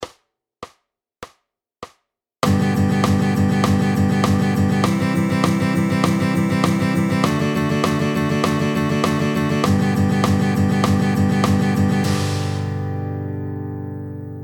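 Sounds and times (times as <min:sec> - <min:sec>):
100 BPM sixteenth note rhythm exercise: 0:02.4 - 0:13.1.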